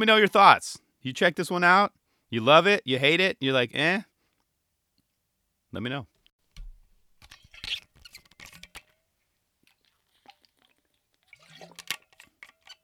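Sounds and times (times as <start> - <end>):
speech: 0.0 - 4.1, 5.7 - 6.1
gulps and lip smacks: 9.6 - 11.8
person sipping water: 9.6 - 11.8.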